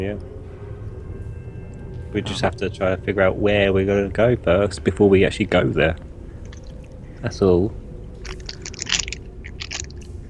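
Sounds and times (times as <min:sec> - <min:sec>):
speech: 0:00.0 - 0:00.4, 0:02.1 - 0:06.1, 0:07.2 - 0:07.8
low hum: 0:00.0 - 0:10.2
crunching on nuts while chewing: 0:06.4 - 0:07.0, 0:08.2 - 0:10.2.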